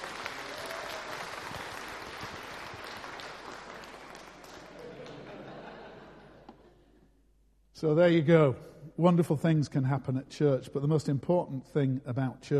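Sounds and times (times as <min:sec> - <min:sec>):
church audience applauding an engagement announcement: 0:00.0 - 0:06.1
laughter: 0:04.6 - 0:07.0
speech: 0:07.8 - 0:12.5.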